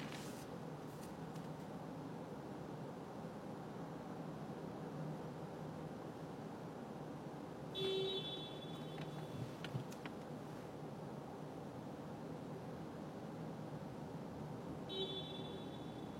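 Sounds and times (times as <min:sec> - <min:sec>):
dense roar of heavy traffic: 0:00.0 - 0:16.1
car horn blasts: 0:07.8 - 0:09.6, 0:14.9 - 0:16.1.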